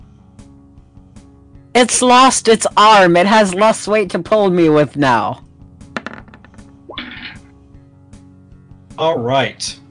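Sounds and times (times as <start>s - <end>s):
speech: 1.8s - 5.4s, 9.0s - 9.8s
twenty-sided die rolling on a table: 6.0s - 7.3s.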